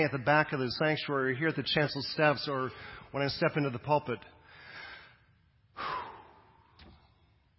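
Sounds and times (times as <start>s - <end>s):
speech: 0.0s - 4.4s
speaker at a church pulpit taking a deep breath in and out: 2.7s - 3.2s, 4.4s - 7.5s.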